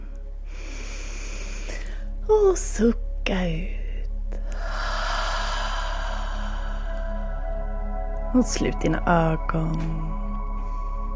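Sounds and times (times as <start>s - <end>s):
deep inhale: 0.4s - 2.2s, 4.4s - 8.0s
speech: 2.3s - 3.8s, 8.4s - 10.2s.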